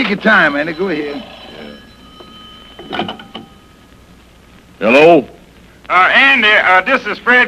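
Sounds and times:
speech: 0.0 - 1.4, 2.9 - 3.2, 4.8 - 7.4
telephone ringing with a bright rattling bell tone: 0.0 - 3.9.

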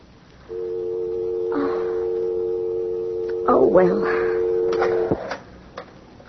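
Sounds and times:
telephone dial tone after a call is hung up: 0.5 - 5.4
speech: 3.5 - 4.3.

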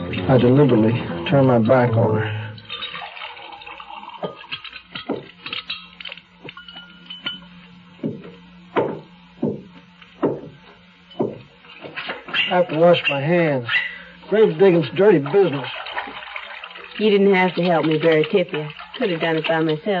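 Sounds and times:
lemonade pouring from a pitcher into glasses: 0.1 - 7.0, 13.8 - 19.9
speech: 0.2 - 2.4, 12.6 - 15.8, 17.0 - 19.9
glasses clinking: 1.4 - 7.7.

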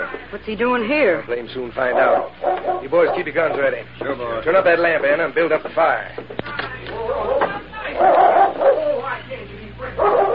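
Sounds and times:
faint low hum: 0.0 - 10.3
speech: 0.3 - 7.4, 8.0 - 8.3
dog barking: 1.8 - 3.6, 7.1 - 9.1, 10.0 - 10.3.

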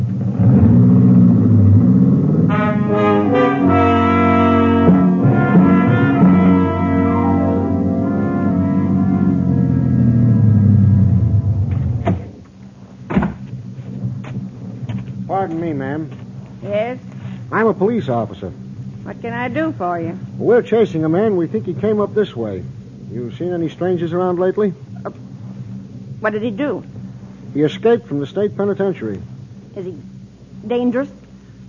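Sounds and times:
car engine approaching and turning into a lane: 0.0 - 31.6
sharp thumps: 8.8 - 15.3
speech: 17.7 - 18.6, 19.2 - 25.2, 26.2 - 26.9, 27.6 - 31.6.

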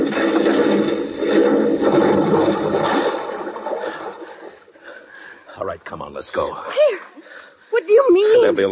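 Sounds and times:
churning, gurgling water in an irrigation ditch: 0.0 - 5.2
speech: 6.2 - 7.1, 7.8 - 8.7.

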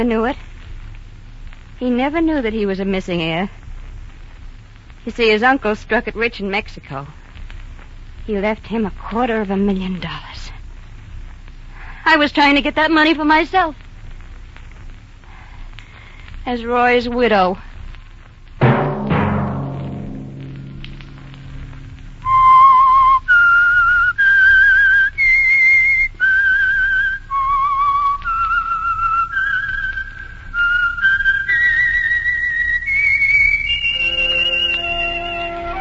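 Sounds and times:
speech: 0.0 - 0.5, 1.8 - 3.6, 5.0 - 7.2, 8.3 - 10.5, 12.0 - 13.8, 16.4 - 17.7
brief sharp opening strike: 18.6 - 22.6
whistled signature theme melody for a radio program: 22.2 - 35.7.

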